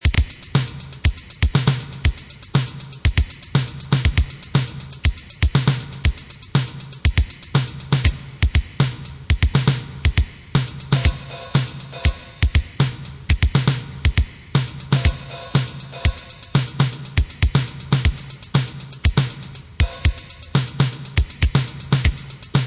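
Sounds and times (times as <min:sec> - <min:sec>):
funk style drum kit: 0:00.0 - 0:22.6.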